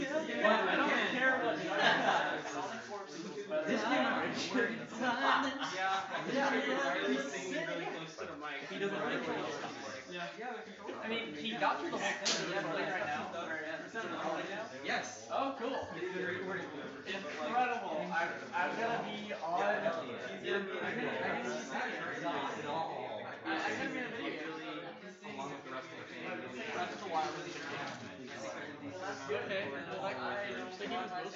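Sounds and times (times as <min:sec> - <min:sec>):
laughter: 0:00.0 - 0:07.9
background crowd: 0:00.0 - 0:31.3.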